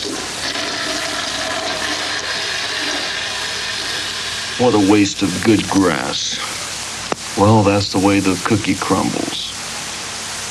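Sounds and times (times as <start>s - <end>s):
toilet flushing: 0.0s - 6.5s
speech: 4.6s - 6.5s, 7.4s - 9.5s.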